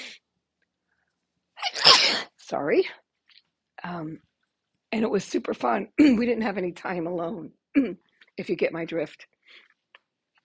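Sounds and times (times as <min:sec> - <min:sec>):
sneeze: 0:01.6 - 0:02.4
speech: 0:02.5 - 0:03.0, 0:03.8 - 0:04.3, 0:04.9 - 0:09.6.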